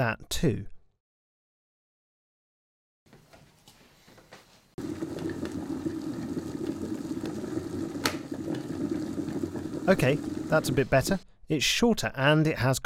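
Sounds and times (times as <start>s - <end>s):
speech: 0.0s - 0.7s, 9.9s - 12.8s
kettle water boiling: 4.8s - 11.2s.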